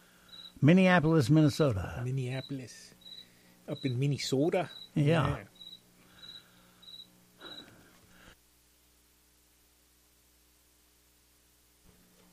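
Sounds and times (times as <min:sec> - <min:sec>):
crickets chirping: 0:00.0 - 0:00.8, 0:02.2 - 0:08.3
speech: 0:00.6 - 0:03.0, 0:03.7 - 0:05.5.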